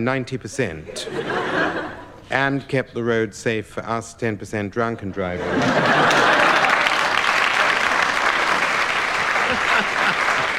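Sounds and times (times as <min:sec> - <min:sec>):
speech: 0:00.0 - 0:01.5, 0:02.3 - 0:06.3
laughter: 0:00.6 - 0:02.3, 0:05.2 - 0:10.5
audience applause: 0:05.6 - 0:10.5.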